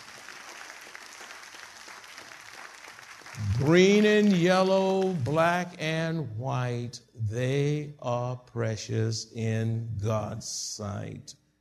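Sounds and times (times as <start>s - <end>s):
large group applauding: 0.0s - 5.7s
speech: 3.4s - 11.4s.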